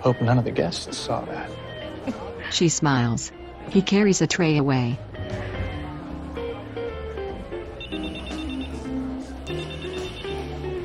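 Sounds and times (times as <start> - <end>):
speech: 0.0 - 5.5
steady music: 0.0 - 10.8
telephone ringing in trilling bursts: 7.8 - 8.9, 9.5 - 10.6.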